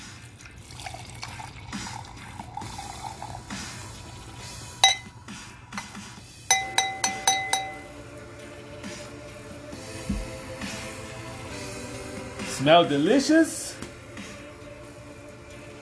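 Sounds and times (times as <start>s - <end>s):
wine pouring into a glass: 0.4s - 5.1s
bright glassy taps: 4.8s - 5.1s, 5.8s - 7.9s
glass clinking: 4.8s - 5.2s, 5.8s - 8.0s
speech: 12.6s - 13.6s.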